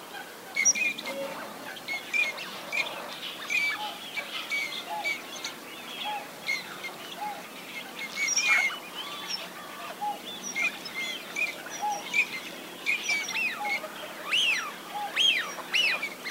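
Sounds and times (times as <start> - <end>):
chorus of teal whistling calls from several birds: 0.6 - 16.2.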